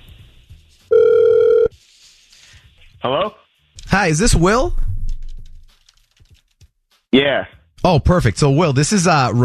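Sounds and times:
ringback tone from an outgoing phone call placed from a radio station: 0.9s - 1.7s
speech: 3.0s - 4.8s, 7.2s - 9.4s.

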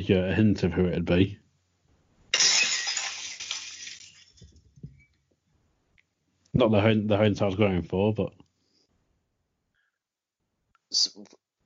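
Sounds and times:
speech: 0.1s - 1.4s, 6.6s - 8.4s, 10.9s - 11.4s
glass shards tinkling and clattering down: 2.3s - 4.5s
glass shattering: 2.3s - 4.5s.

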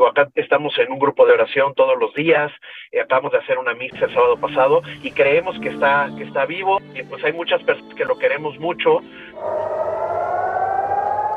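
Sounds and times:
speech: 0.0s - 9.9s
air raid sirens wailing: 3.9s - 11.3s.

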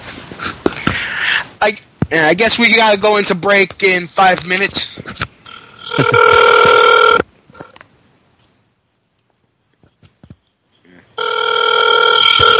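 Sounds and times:
speech: 1.6s - 7.1s
phone ringing on an outgoing call from a cell phone: 5.4s - 7.7s, 11.2s - 12.5s.

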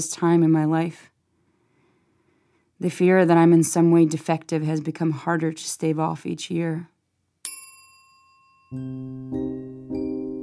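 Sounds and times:
speech: 0.0s - 1.1s, 2.8s - 6.9s, 8.7s - 10.0s
bright bell strikes and lower fuller tones: 7.4s - 10.4s.

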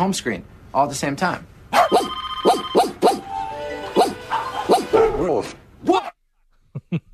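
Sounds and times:
speech: 0.0s - 1.9s
dog barking: 1.7s - 3.2s, 4.0s - 5.3s.

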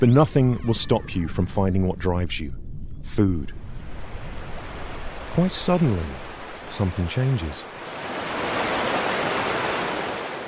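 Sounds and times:
speech: 0.0s - 2.6s, 3.2s - 3.6s, 5.4s - 7.7s
ocean surf roaring at a river mouth: 3.2s - 10.4s.

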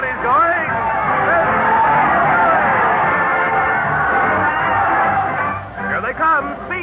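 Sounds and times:
large crowd cheering and shouting: 0.0s - 6.8s
individual whoops: 0.7s - 5.6s.

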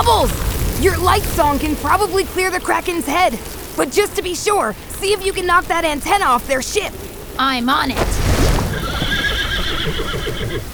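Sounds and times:
speech: 0.0s - 8.2s
flying water horse whinnying in an animated fantasy scene: 8.6s - 10.7s.

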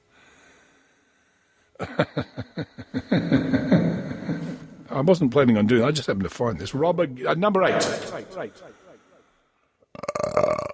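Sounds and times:
speech: 1.8s - 3.5s, 5.0s - 8.9s
laughter: 1.8s - 4.9s
loud drawn-out rattling burp: 9.9s - 10.7s.

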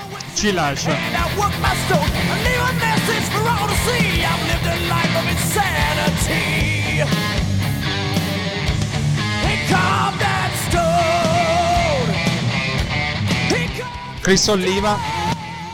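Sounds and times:
loud dense rock music with heavy electric guitar and driving band: 0.0s - 15.7s
speech: 0.4s - 7.4s, 9.7s - 10.9s, 13.8s - 15.2s.

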